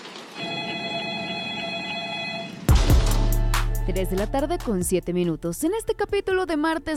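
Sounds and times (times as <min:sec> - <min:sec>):
telephone ringing with bright electronic warbling tone: 0:00.4 - 0:02.7
speech: 0:03.9 - 0:06.9.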